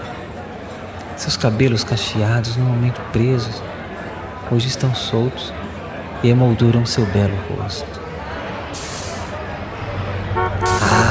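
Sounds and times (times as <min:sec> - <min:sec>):
speech: 0:01.2 - 0:03.8, 0:04.5 - 0:05.6, 0:06.2 - 0:08.0
city bus engine rumbling: 0:08.7 - 0:11.1
brief horn-like toot: 0:10.4 - 0:11.1.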